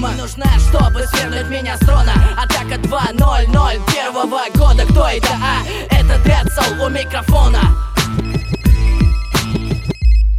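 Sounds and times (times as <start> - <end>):
speech: 0.1 - 7.9
telephone melodic electronic ringtone: 6.8 - 10.3.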